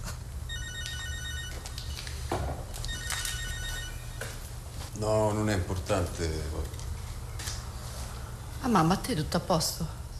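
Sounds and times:
low hum: 0.0s - 10.1s
telephone ringing in electronic bursts of high-pitched tones: 0.5s - 2.2s, 2.8s - 4.5s
speech: 5.0s - 6.8s, 8.6s - 10.0s.

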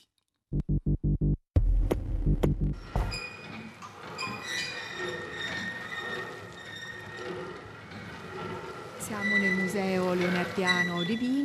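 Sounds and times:
low rhythmic thumps of a four-spindle flyer spinning machine: 0.6s - 3.2s
reproduction four-spindle flyer spinning machine running: 2.8s - 11.4s
speech: 9.8s - 11.4s.

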